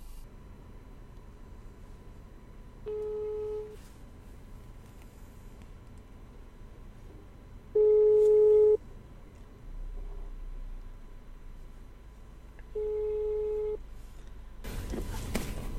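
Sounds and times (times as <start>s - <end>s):
telephone ringback tone on an outgoing call in Indonesia: 2.9s - 3.8s, 7.8s - 8.8s, 12.8s - 13.8s.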